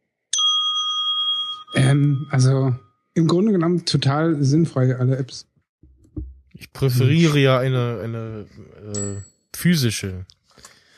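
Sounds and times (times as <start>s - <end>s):
desk bell ding: 0.4s - 2.8s
speech: 1.7s - 5.5s, 6.2s - 10.7s.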